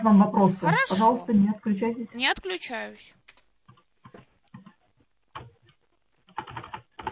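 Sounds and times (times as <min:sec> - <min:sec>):
speech: 0:00.0 - 0:03.2
typing on a computer keyboard: 0:03.3 - 0:07.0.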